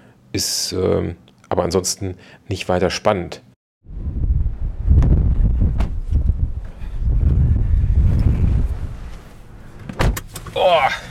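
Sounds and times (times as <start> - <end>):
speech: 0.4 - 3.4
strong wind buffeting the microphone: 3.8 - 9.2.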